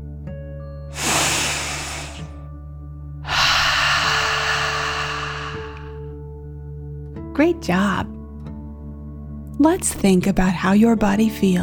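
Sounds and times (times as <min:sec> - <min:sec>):
deep relaxation breath in through nose and out through mouth: 0:01.0 - 0:02.4, 0:03.2 - 0:06.2
speech: 0:07.4 - 0:08.2, 0:09.6 - 0:11.6.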